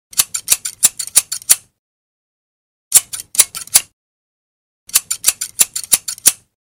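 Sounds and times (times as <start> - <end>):
scissors cutting: 0.1 - 1.8, 2.9 - 4.0, 4.9 - 6.6.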